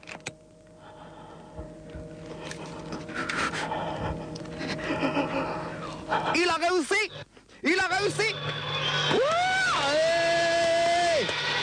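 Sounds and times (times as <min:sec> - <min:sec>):
busy hum: 0:00.0 - 0:11.6
heavy anxious panting: 0:00.8 - 0:07.6
speech: 0:06.4 - 0:10.2.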